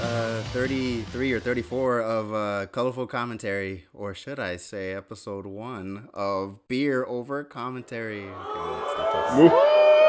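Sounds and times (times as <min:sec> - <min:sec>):
speech: 0:00.5 - 0:10.0
crowd cheering: 0:08.2 - 0:10.0.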